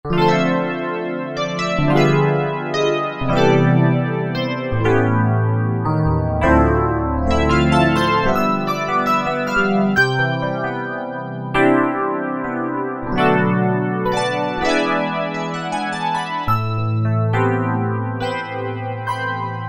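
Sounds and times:
split piano preset on a synthesizer: 0.0 - 19.6.

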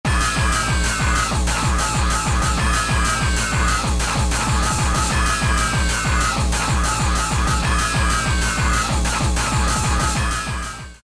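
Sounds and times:
Gabba music on Roland D2: 0.1 - 11.0.

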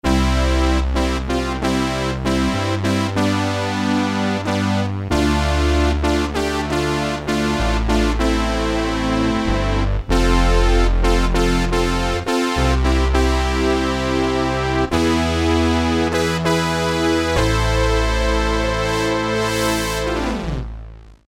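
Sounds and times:
brass instruments playing: 0.1 - 20.7.

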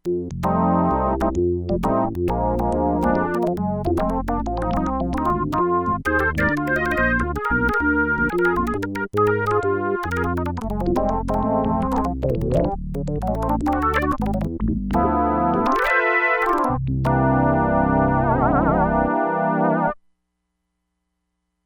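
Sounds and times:
Crumar Bit 99 jazz organ: 0.1 - 19.9.

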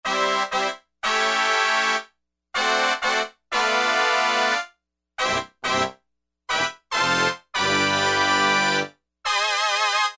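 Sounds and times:
E-mu Proteus-1 synthesizer brass preset: 0.1 - 10.1.

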